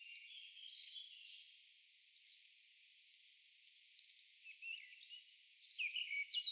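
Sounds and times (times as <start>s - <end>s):
European robin Erithacus rubecula chirping: 0.0s - 1.5s, 3.7s - 6.4s.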